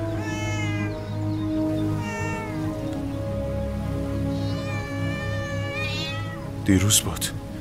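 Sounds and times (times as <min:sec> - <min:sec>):
cat meowing: 0:00.1 - 0:03.2, 0:04.0 - 0:06.7
speech: 0:06.7 - 0:07.5.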